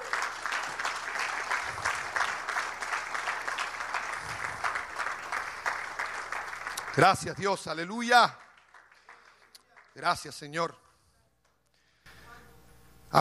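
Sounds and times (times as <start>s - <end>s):
congregation applauding: 0.0s - 10.4s
speech: 7.0s - 8.4s, 10.0s - 10.8s.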